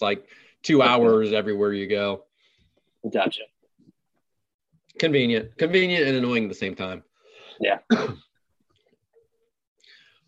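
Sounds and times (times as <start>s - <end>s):
speech: 0.0s - 2.3s, 3.0s - 3.5s, 5.0s - 8.3s
suppressed cough: 7.9s - 8.3s.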